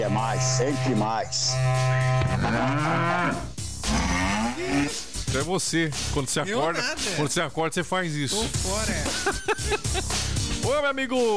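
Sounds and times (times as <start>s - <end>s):
loud droning berrante cattle horn blast: 0.0s - 4.9s
speech: 0.2s - 11.3s
laughter: 8.8s - 10.4s.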